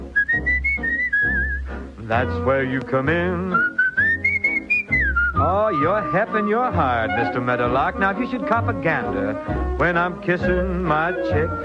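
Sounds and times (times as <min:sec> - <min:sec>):
steady band accompaniment: 0:00.0 - 0:11.6
person whistling a thin wavering melody: 0:00.1 - 0:02.3, 0:03.3 - 0:07.4, 0:10.4 - 0:11.6
speech: 0:02.1 - 0:03.8, 0:05.4 - 0:11.6.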